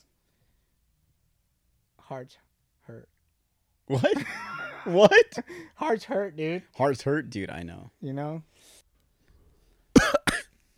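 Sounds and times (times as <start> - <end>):
speech: 2.1 - 3.2, 3.9 - 8.8
laughter: 3.9 - 5.5
person coughing and choking after inhaling something: 9.9 - 10.5.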